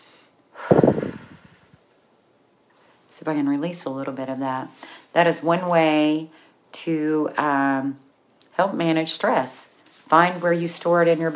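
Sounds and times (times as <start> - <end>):
slow deep breath taken to ease tension in the shoulders: 0.0 - 1.9
speech: 3.2 - 11.3.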